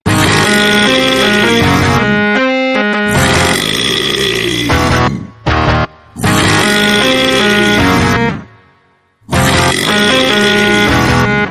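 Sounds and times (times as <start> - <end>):
burping: 0.1 - 2.2, 3.1 - 5.5, 6.1 - 8.5, 9.2 - 11.3.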